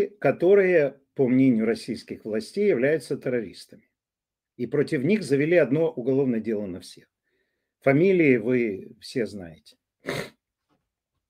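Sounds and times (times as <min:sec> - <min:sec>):
speech: 0:00.0 - 0:03.9, 0:04.6 - 0:07.1, 0:07.8 - 0:10.4
short sharp cough: 0:10.0 - 0:10.4.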